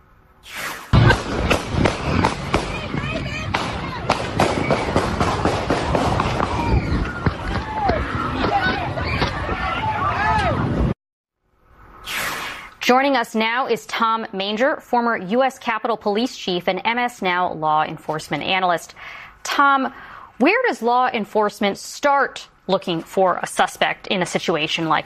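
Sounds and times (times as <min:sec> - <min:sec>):
gunshots in a rapid irregular string: 0:00.9 - 0:07.6
people shouting in panic: 0:01.0 - 0:10.9
people running in panic: 0:01.5 - 0:10.9
speech: 0:12.9 - 0:25.0.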